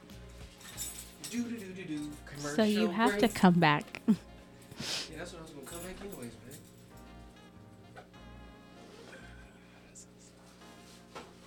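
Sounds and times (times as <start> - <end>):
keys jangling: 0.5 - 2.3, 5.5 - 7.1
speech: 1.3 - 6.4.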